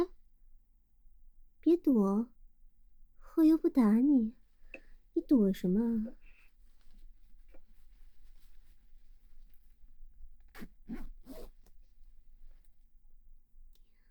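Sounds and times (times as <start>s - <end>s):
speech: 1.7s - 2.4s, 3.4s - 4.4s, 5.2s - 6.2s
faint rustling: 6.1s - 12.9s
clothing zipper being pulled: 10.5s - 11.7s.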